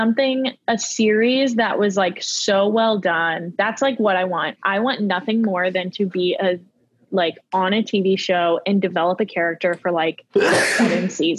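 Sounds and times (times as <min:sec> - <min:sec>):
speech: 0:00.0 - 0:11.3
sneeze: 0:10.4 - 0:11.1.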